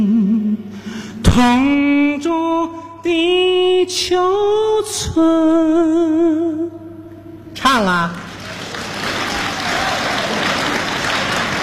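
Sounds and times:
speech: 1.3s - 6.8s, 7.7s - 8.2s
audience applause at a live comedy show: 8.2s - 11.6s.

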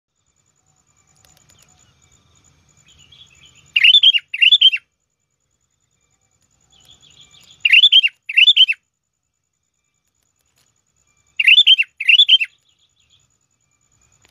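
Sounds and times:
faint steady high whine: 0.1s - 14.2s
Sooty-headed bulbul song: 2.9s - 4.9s, 6.8s - 8.8s, 11.2s - 13.3s.

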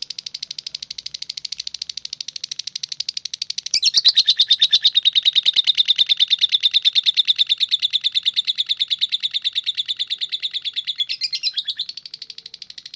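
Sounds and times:
Oriental magpie-robin song of rapid evenly spaced high notes: 3.4s - 12.9s.

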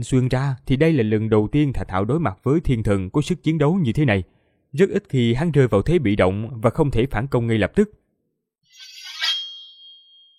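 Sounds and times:
speech: 0.0s - 8.0s
sword ringing clang: 8.7s - 10.3s.

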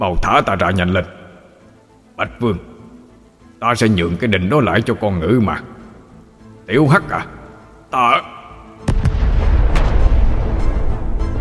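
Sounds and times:
speech: 0.0s - 1.2s, 2.2s - 2.7s, 3.6s - 5.7s, 6.7s - 8.3s
explosion sound effect: 8.8s - 11.4s.

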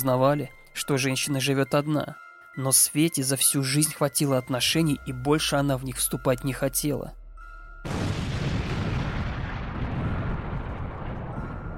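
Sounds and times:
speech: 0.0s - 7.2s, 7.8s - 8.2s
explosion: 7.9s - 11.7s.

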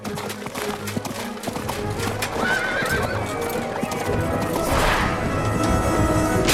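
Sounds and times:
horse hoofbeats galloping during a jousting bout: 0.0s - 6.4s
horse neighing with loud shrill whinnies during a jousting bout: 2.3s - 3.4s.

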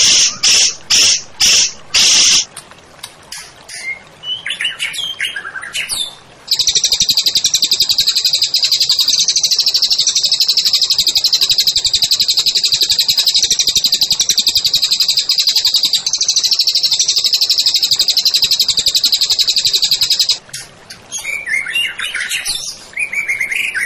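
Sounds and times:
white-rumped shama song with buzzy bursts, whistles and trill: 0.0s - 2.5s, 3.4s - 23.8s.

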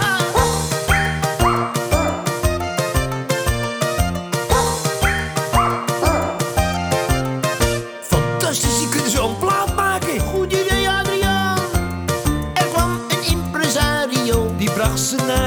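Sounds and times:
harmonic music: 0.0s - 15.4s
poodle barking in a rhythmic song: 0.0s - 15.4s.

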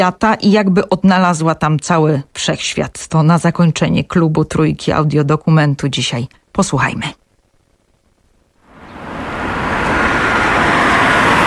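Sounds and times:
speech: 0.0s - 7.2s
city-centre traffic roaring at a taxi rank: 8.7s - 11.4s.

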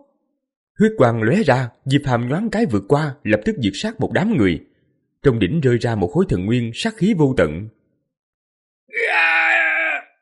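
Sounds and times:
speech: 0.8s - 7.8s
man screaming in agony: 8.9s - 10.1s.

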